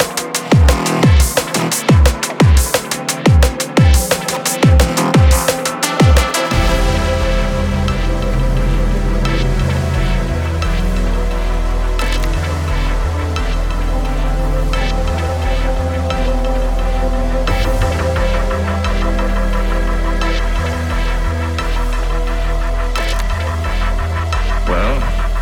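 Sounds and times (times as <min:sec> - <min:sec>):
sharp rhythmic hits: 0:00.0 - 0:09.6
deep throbbing bass: 0:00.0 - 0:25.4
driving repetitive kick drum: 0:00.0 - 0:25.4
loud techno track: 0:00.0 - 0:25.4.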